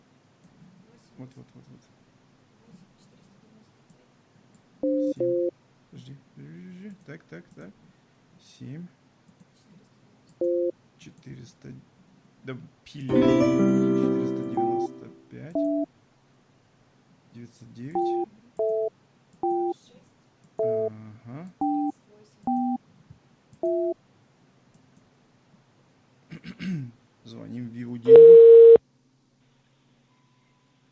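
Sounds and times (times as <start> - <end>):
speech: 1.2 - 2.1, 4.9 - 5.5, 6.9 - 9.0, 10.4 - 11.9, 12.5 - 15.9, 17.4 - 18.3
phone number dialled as short touch-tone beeps: 4.9 - 5.5, 15.6 - 15.9, 19.5 - 19.7, 21.6 - 21.9, 22.5 - 22.8, 23.7 - 23.9, 28.1 - 28.8.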